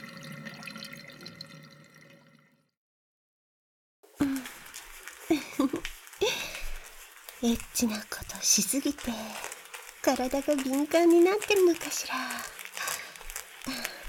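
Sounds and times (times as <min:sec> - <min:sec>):
water splashing as oil is washed off a body with body soap: 0:04.2 - 0:14.0
speech: 0:07.4 - 0:12.6.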